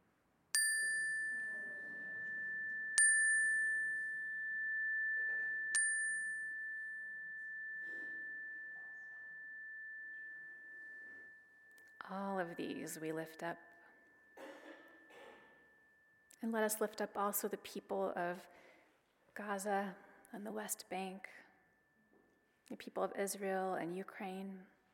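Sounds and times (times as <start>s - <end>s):
bright chime struck during a prayer: 0.6s - 16.4s
speech: 12.1s - 13.7s, 16.5s - 18.7s, 19.4s - 21.4s, 22.7s - 24.8s.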